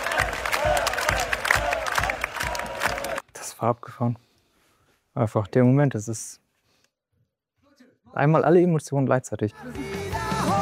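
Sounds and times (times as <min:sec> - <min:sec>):
large concert crowd chanting a name: 0:00.0 - 0:03.2
speech: 0:03.6 - 0:04.3, 0:05.2 - 0:06.4, 0:08.2 - 0:10.6.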